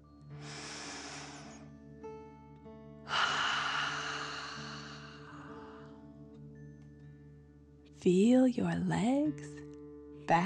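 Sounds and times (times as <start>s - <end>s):
deep breath in through the nose and out: 0.4s - 1.8s, 3.1s - 6.1s
speech: 8.0s - 9.7s.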